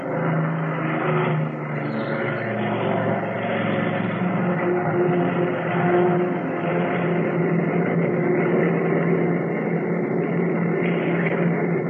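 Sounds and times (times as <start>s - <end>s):
big plane engines roaring during takeoff run: 0.0s - 11.8s.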